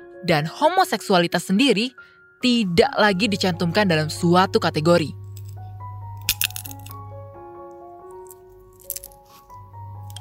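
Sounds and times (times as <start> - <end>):
soft steady musical backdrop: 0.0 - 10.1
speech: 0.2 - 5.2
low hum: 3.1 - 7.3
person chewing sunflower seeds in a room behind a psychiatry building: 6.2 - 7.0, 8.0 - 10.1.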